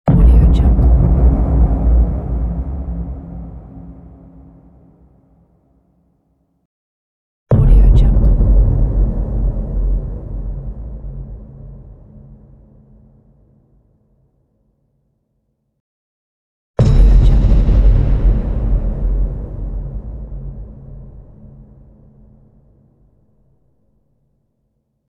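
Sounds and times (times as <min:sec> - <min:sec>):
cinematic boom: 0:00.1 - 0:05.3, 0:07.5 - 0:12.4, 0:16.8 - 0:22.0.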